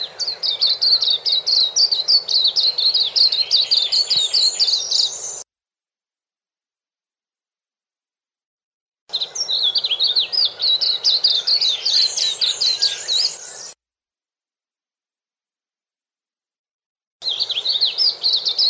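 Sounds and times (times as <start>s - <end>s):
white-eye sweet high twittering with slurred buzzy notes: 0.0s - 5.4s, 9.1s - 13.8s, 17.2s - 18.6s.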